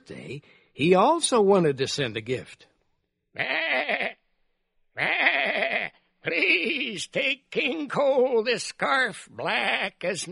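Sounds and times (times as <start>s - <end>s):
speech: 0.1s - 2.7s, 3.4s - 4.2s, 5.0s - 10.2s
sheep bleating: 3.4s - 4.2s, 5.0s - 7.3s, 9.4s - 10.0s.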